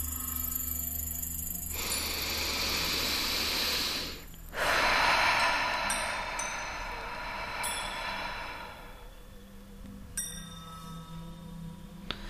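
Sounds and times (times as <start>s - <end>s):
deep breaths in and out during a seated guided breathing exercise: 1.6s - 9.7s, 12.0s - 12.2s.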